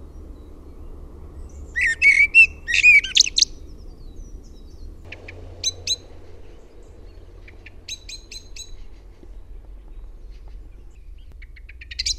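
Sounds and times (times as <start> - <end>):
common blackbird singing a warbled phrase: 0.0 - 12.1
low background hum: 0.0 - 12.1
faint high bird notes: 4.6 - 11.3.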